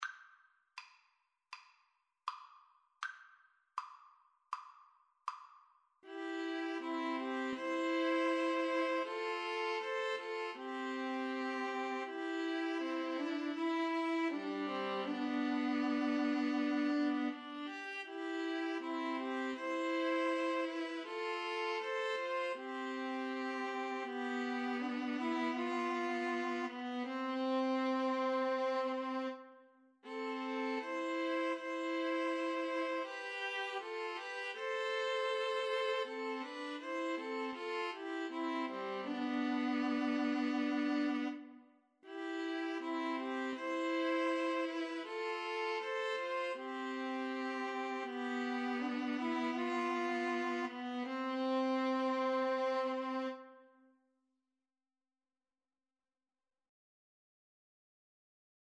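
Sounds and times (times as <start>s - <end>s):
string trio playing a farewell song: 6.0s - 29.4s, 30.1s - 53.5s.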